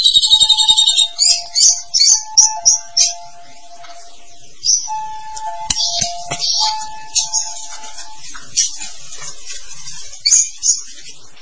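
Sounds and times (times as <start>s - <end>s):
starling buzzy warbling song: 0.2s - 8.4s.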